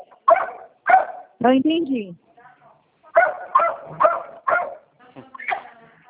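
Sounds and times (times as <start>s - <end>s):
dog barking during a phone call: 0.2s - 1.4s, 3.1s - 5.8s
speech: 1.4s - 2.2s.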